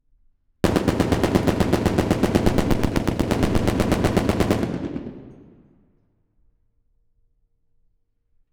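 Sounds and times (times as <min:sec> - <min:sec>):
Browning M2 machine gun burst in a street: 0:00.6 - 0:05.6.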